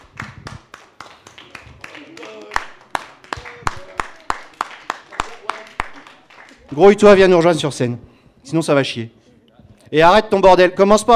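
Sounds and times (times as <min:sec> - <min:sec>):
audience at a stage show clapping in a steady rhythm: 0:00.0 - 0:07.2
speech: 0:06.7 - 0:09.2, 0:09.9 - 0:11.1.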